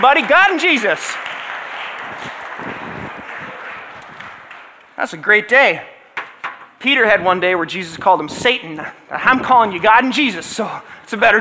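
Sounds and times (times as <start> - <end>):
speech: 0.0 - 1.4, 5.0 - 5.9, 6.8 - 11.3
audience applause: 0.0 - 4.9.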